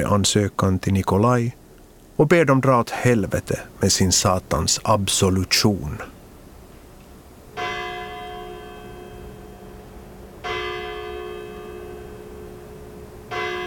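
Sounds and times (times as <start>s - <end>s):
speech: 0.0s - 1.6s, 2.2s - 6.2s
church bell tolling: 7.6s - 13.6s.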